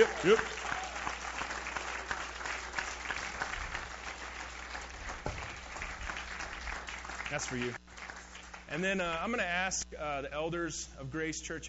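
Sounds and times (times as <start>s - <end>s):
speech: 0.0s - 0.6s, 7.3s - 7.8s, 8.7s - 11.6s
large audience applauding at a church service: 0.0s - 8.9s.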